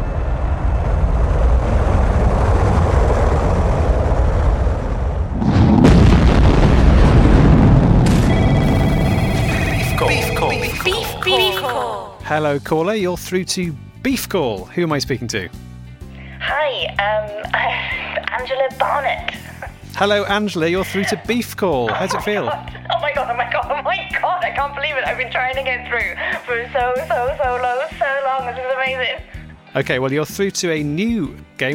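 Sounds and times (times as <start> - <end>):
rocket engines roaring at launch: 0.1 - 11.7
laughter: 10.1 - 12.1, 20.7 - 23.2
speech: 12.4 - 15.7, 16.5 - 23.5, 24.5 - 31.7.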